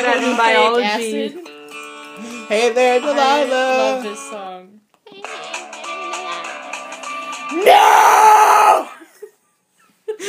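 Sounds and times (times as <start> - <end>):
speech: 0.0 - 1.5, 2.2 - 5.5, 7.5 - 8.9
person screaming loudly: 7.5 - 9.0.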